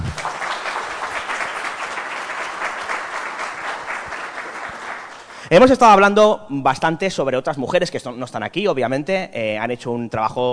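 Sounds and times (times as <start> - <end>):
sustained audience applause: 0.0 - 5.5
speech: 5.5 - 10.5.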